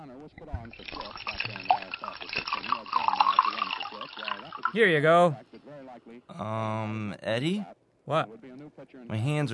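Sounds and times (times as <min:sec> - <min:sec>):
speech: 0:00.3 - 0:09.5
water poured into a glass: 0:00.4 - 0:04.8.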